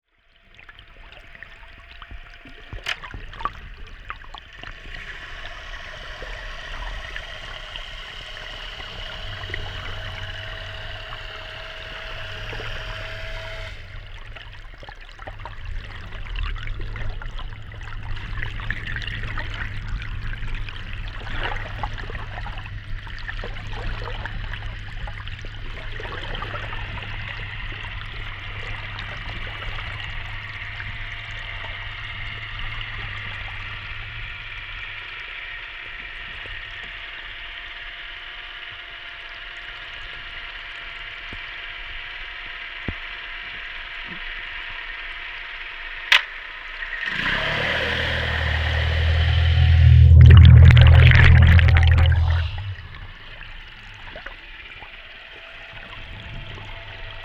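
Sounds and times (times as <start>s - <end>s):
gabarre boat motor heard underwater in Vézac: 0.1s - 57.2s.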